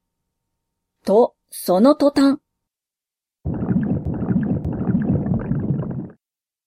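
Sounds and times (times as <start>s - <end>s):
speech: 1.0s - 2.4s
loud stomach rumbling from a strong laxative: 3.5s - 6.2s.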